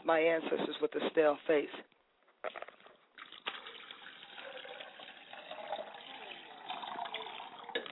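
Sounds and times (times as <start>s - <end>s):
speech: 0.1s - 2.6s
water running and splashing as hands and face are washed: 3.2s - 7.8s.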